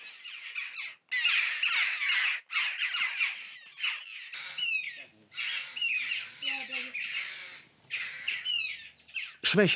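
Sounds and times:
hungry common buzzard chick begging calls: 0.0s - 9.5s.

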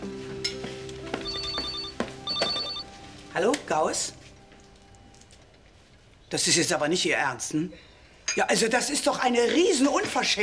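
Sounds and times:
rustle: 0.1s - 6.7s
telephone ringing with an electronic tone indoors: 1.2s - 2.9s
speech: 3.4s - 4.2s, 6.3s - 10.4s.

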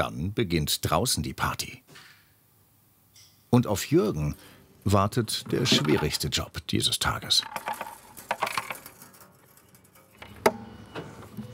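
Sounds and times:
speech: 0.0s - 2.1s, 3.5s - 7.9s
loose small change rattling and clinking inside a container: 7.3s - 10.2s.

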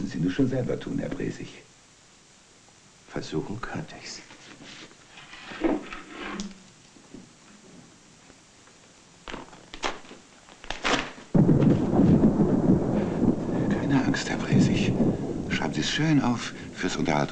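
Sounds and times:
speech: 0.1s - 1.7s, 3.1s - 4.8s, 16.0s - 17.3s
sharp cracks of thunder: 11.2s - 17.3s.

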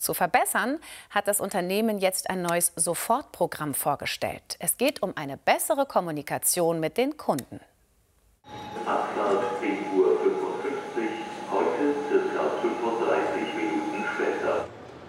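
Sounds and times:
speech: 0.0s - 7.7s, 8.5s - 9.8s
indistinct crowd voices echoing in Hannover main railway station: 8.5s - 14.7s.

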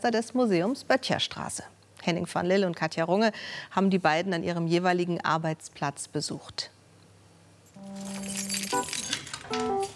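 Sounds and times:
speech: 0.0s - 6.7s
keys jangling on a key ring: 7.7s - 9.9s.

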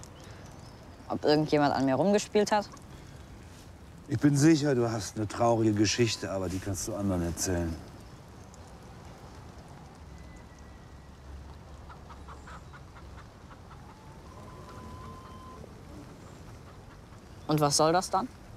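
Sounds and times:
steady hiss of noise: 0.0s - 18.5s
speech: 1.1s - 2.8s, 4.1s - 7.9s, 17.5s - 18.4s
chickens clucking: 11.7s - 17.6s
brief higher calls: 13.7s - 16.5s.

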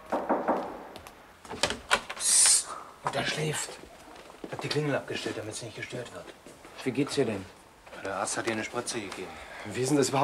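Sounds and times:
knocking on a door: 0.1s - 0.9s
speech: 3.1s - 4.0s, 4.6s - 10.2s.

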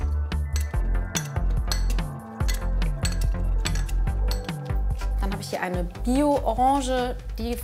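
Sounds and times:
pounding tool clinking against a glass jar crushing sea buckthorn berries: 0.0s - 5.2s
speech: 5.5s - 7.6s.

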